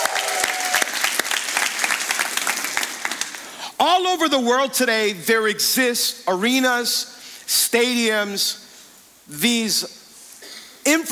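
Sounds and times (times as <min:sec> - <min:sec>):
congregation applauding at a church service: 0:00.0 - 0:03.6
speech: 0:04.0 - 0:08.6, 0:09.3 - 0:10.0, 0:10.9 - 0:11.1.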